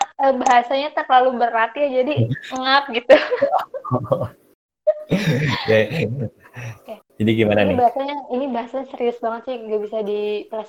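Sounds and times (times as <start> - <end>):
speech: 0.2 - 4.4, 5.1 - 10.6
laughter: 2.2 - 4.3, 5.1 - 6.7
person coughing: 5.1 - 6.7.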